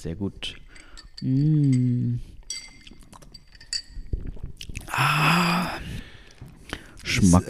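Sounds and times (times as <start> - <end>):
speech: 0.0 - 2.4, 5.0 - 6.0, 7.1 - 7.4
glasses clinking in a toast: 0.4 - 4.5.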